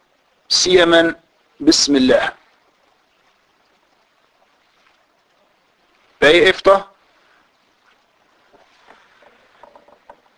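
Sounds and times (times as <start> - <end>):
speech: 0.6 - 2.4, 6.2 - 6.9
water splashing and sloshing during mouth rinsing in ritual washing before prayer: 2.4 - 6.2, 7.0 - 10.3.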